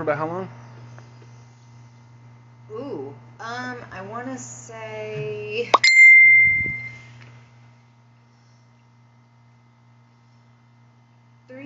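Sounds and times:
speech: 0.0s - 0.6s, 2.7s - 6.9s
phone notification ding: 5.8s - 7.0s.

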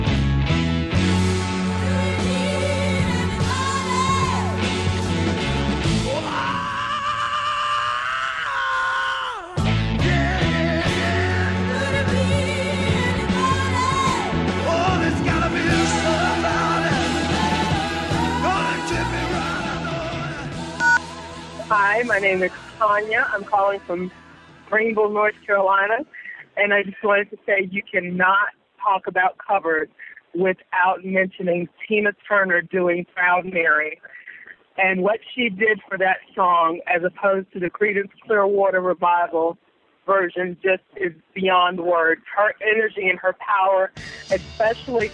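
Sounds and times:
full-band rock recording: 0.0s - 6.4s, 9.6s - 21.7s
rock singer's long sustained high scream: 6.1s - 10.5s, 13.5s - 20.4s
speech: 22.2s - 34.1s, 34.8s - 45.1s.

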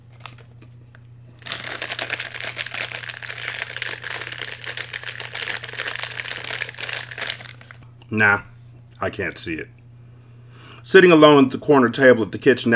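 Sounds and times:
cellophane crumpled to imitate a crackling fire: 0.0s - 7.8s
speech: 8.1s - 9.8s, 10.9s - 12.7s.

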